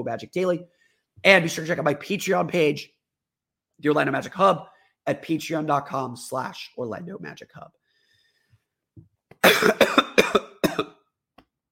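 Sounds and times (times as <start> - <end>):
speech: 0.0 - 3.0, 3.8 - 7.8, 9.0 - 10.9
person coughing up phlegm: 9.4 - 11.1.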